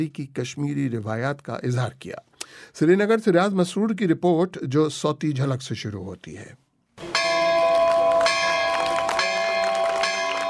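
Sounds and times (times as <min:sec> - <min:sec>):
speech: 0:00.0 - 0:07.1
newly installed church tower bell ringing: 0:07.0 - 0:10.4.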